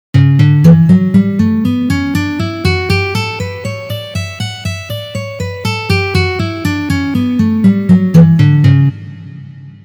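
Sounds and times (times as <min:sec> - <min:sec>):
D major scale in second position: 0:00.3 - 0:08.9.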